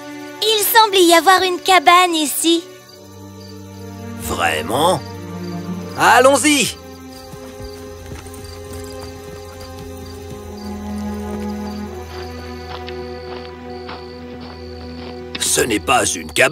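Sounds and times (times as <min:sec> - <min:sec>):
speech: 0:00.4 - 0:02.7, 0:04.3 - 0:05.1, 0:06.0 - 0:06.8, 0:15.6 - 0:16.4
horses walking toward a stable, hooves clip-clopping: 0:05.6 - 0:15.8.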